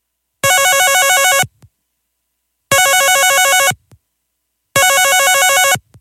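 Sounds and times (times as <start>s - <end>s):
telephone ringing on an outgoing call: 0.4s - 1.5s, 2.7s - 3.8s, 4.8s - 5.8s.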